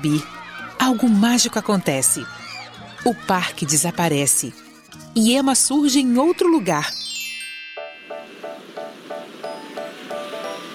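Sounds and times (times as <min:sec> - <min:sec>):
laughter: 0:00.0 - 0:05.2
speech: 0:00.0 - 0:07.0
wind and waves at the bow of a moving ship along the coast of China: 0:07.9 - 0:10.7.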